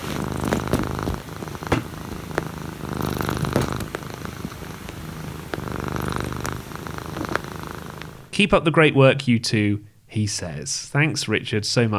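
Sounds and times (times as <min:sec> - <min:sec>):
cat snoring: 0:00.0 - 0:08.3
speech: 0:08.4 - 0:11.9.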